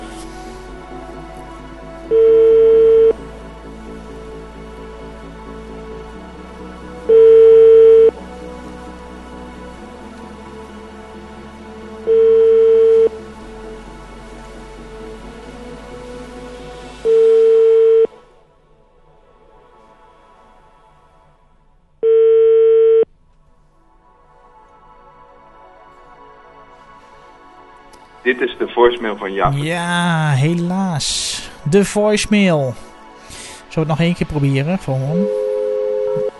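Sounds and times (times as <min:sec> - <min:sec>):
faint music: 0:00.0 - 0:36.3
telephone ringing tones while a call is placed: 0:02.1 - 0:03.2, 0:07.1 - 0:08.1, 0:12.1 - 0:13.1, 0:17.1 - 0:18.1, 0:22.0 - 0:23.1, 0:35.1 - 0:36.3
speech: 0:28.3 - 0:32.9, 0:33.8 - 0:35.4.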